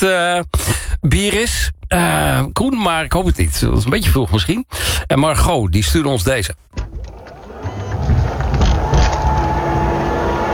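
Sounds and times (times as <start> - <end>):
speech: 0.0 - 6.8
car tailgate being opened with a rumbling mechanical whir: 6.8 - 10.5.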